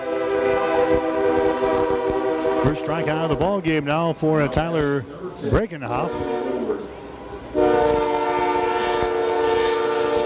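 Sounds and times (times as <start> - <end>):
sustained droning train horn blast: 0.0 - 3.8, 5.9 - 6.9, 7.5 - 10.2
train passing on railroad track by a ballpark: 0.0 - 10.2
speech: 2.6 - 7.0.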